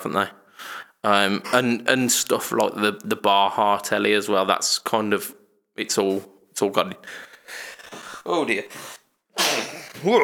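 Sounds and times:
speech: 0.0s - 9.0s, 10.0s - 10.2s
single loud sneeze: 8.8s - 10.2s.

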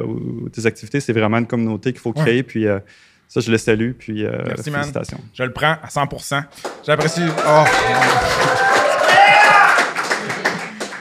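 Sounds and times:
speech: 0.0s - 8.7s
live audience applauding: 6.6s - 11.0s.

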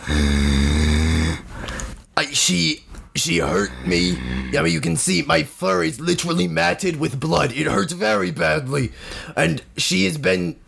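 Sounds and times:
person imitating a growl: 0.0s - 1.5s, 3.3s - 4.8s
speech: 0.1s - 0.5s, 2.3s - 10.6s.

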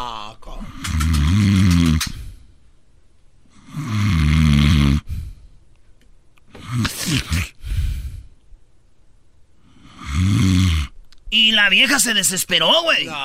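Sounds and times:
loud heavy rasping snoring: 0.8s - 2.1s, 3.6s - 5.1s, 9.8s - 10.9s
speech: 11.5s - 13.2s.

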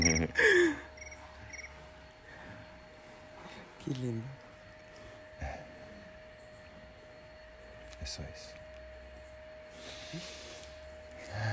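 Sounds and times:
cricket chirping: 0.0s - 11.5s
speech: 3.9s - 4.4s, 8.0s - 8.6s, 10.1s - 10.4s
breathy vocal sounds: 10.0s - 11.5s.

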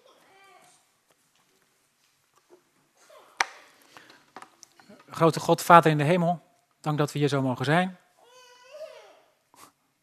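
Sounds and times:
toddler letting out a whiny downward-sliding wail: 0.0s - 0.8s, 8.2s - 9.3s
speech: 5.2s - 8.0s.

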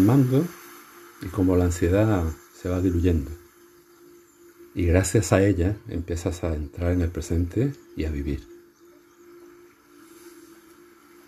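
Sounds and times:
speech: 0.0s - 0.6s, 1.2s - 3.4s, 4.8s - 8.5s
sea waves: 0.0s - 4.8s, 8.5s - 11.2s.

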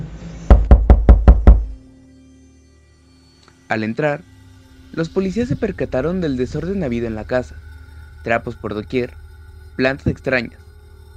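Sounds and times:
firm knocks on a wooden door: 0.5s - 1.7s
speech: 3.7s - 4.3s, 5.0s - 9.2s, 9.8s - 10.6s
low quiet hum: 5.0s - 11.1s.

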